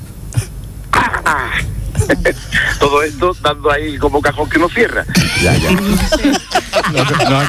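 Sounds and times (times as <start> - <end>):
human voice imitating male Madagascar tortoise mating call: 0.4 - 2.2, 5.1 - 6.2
laughter: 0.9 - 7.4
speech: 2.1 - 7.4.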